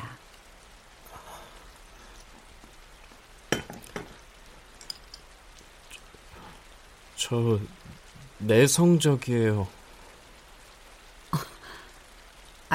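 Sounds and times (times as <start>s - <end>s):
steady rain falling before the start of winter: 0.0s - 12.7s
sharper drips and clinks: 3.5s - 5.3s
speech: 7.2s - 9.8s.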